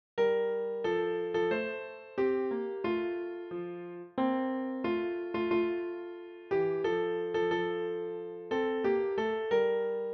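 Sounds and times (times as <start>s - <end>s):
Christmas carol played on piano: 0.2s - 10.1s.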